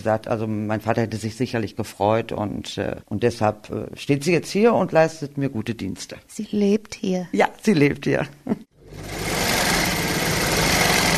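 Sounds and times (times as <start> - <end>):
speech: 0.0 - 9.5
sewing machine running at full speed: 8.8 - 11.1.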